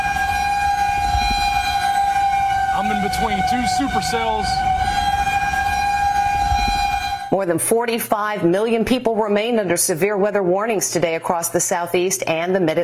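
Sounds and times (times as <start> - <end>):
tornado sirens wailing across the landscape: 0.0 - 7.7
speech: 3.2 - 5.0, 7.3 - 12.8.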